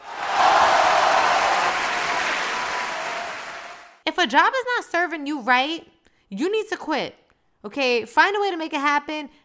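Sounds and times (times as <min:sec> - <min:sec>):
crowd applause: 0:00.0 - 0:04.0
speech: 0:04.1 - 0:09.4.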